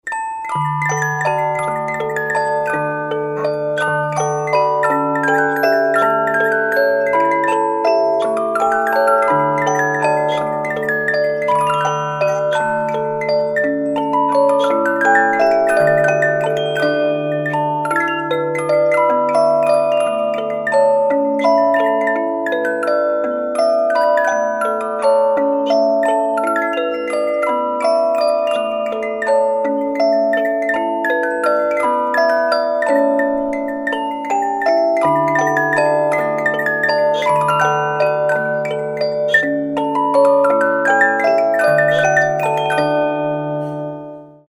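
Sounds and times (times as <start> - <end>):
small cylinder music box playing: 0.0 - 44.4.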